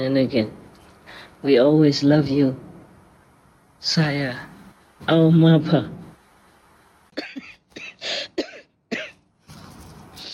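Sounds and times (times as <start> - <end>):
speech: 0.0 - 2.7, 3.8 - 6.0
person coughing: 7.2 - 9.2.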